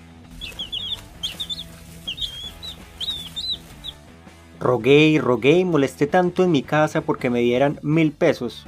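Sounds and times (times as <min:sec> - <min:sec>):
chicks cheeping and clucking: 0:00.3 - 0:04.1
speech: 0:04.6 - 0:08.6.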